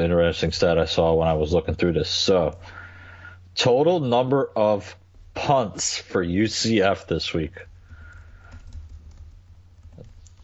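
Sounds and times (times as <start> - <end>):
speech: 0.0 - 2.8, 3.6 - 7.7
typing on a computer keyboard to enter data into a spreadsheet: 7.9 - 10.4.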